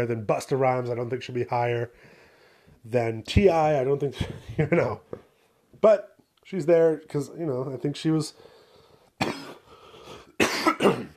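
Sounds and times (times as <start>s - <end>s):
speech: 0.0s - 2.2s, 2.8s - 8.5s
person coughing with an irritated throat: 9.2s - 11.1s.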